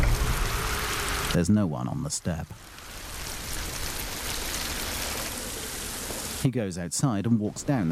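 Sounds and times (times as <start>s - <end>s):
heavy rain falling outside: 0.0s - 6.5s
speech: 1.3s - 2.8s, 6.4s - 7.9s.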